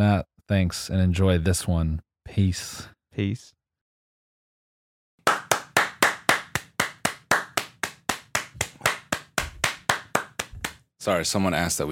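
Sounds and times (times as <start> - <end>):
speech: 0.0 - 3.6, 11.0 - 11.9
two people clapping hands in a fast steady rhythm: 5.2 - 10.8.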